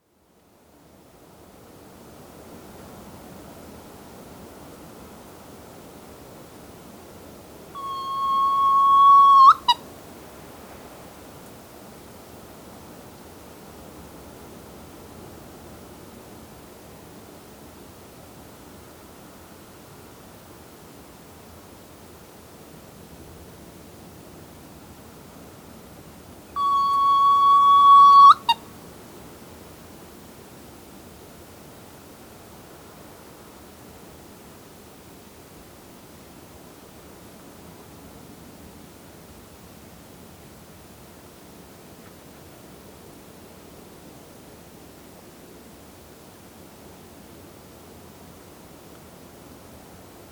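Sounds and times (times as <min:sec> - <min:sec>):
Soft-plumaged petrel Pterodroma mollis calling: 0:07.8 - 0:09.8, 0:26.6 - 0:28.6.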